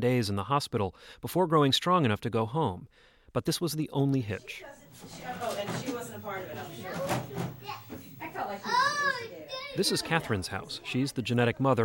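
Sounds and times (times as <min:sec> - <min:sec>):
speech: 0:00.0 - 0:07.8, 0:09.8 - 0:11.8
young children chattering and squealing: 0:04.6 - 0:11.8
knocks and clatters of play at a family home: 0:05.0 - 0:08.2.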